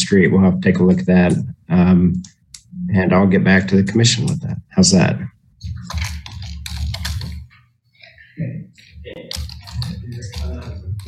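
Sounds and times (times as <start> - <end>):
speech: 0.1 - 6.1, 8.4 - 9.4
typing on a computer keyboard: 5.8 - 7.5, 9.2 - 11.0.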